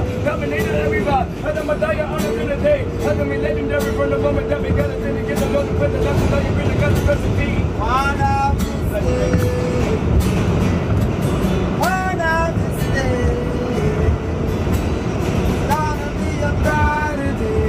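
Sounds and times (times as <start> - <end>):
high-pitched metallic train wheel squeals: 0.0 - 9.8
moving train roaring and rattling: 0.0 - 17.6.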